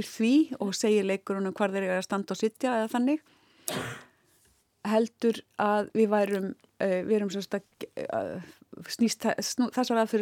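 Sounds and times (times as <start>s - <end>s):
speech: 0.0s - 4.0s, 4.8s - 10.2s
single short cough: 3.7s - 4.2s.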